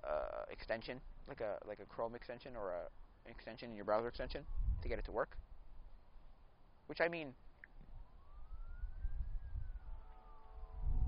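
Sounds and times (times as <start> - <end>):
speech: 0.5 - 5.5, 6.9 - 7.4
fire truck and police car sirens wailing past: 7.8 - 11.0.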